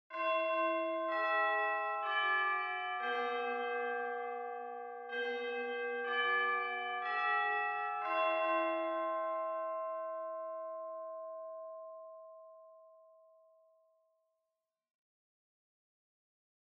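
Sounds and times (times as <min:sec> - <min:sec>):
Japanese school bell chime: 0:00.1 - 0:13.5.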